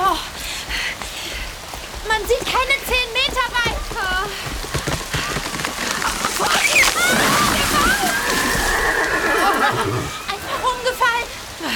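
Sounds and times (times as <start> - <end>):
heavy rain pouring in a rainstorm: 0.0 - 11.7
strong wind gusts in a rainstorm: 0.0 - 11.7.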